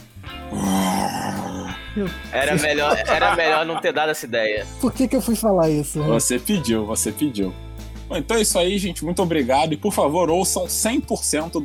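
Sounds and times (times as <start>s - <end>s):
person growling an imitation of a lion's roar: 0.4s - 1.9s
speech: 2.0s - 11.6s
laughter: 2.4s - 4.2s.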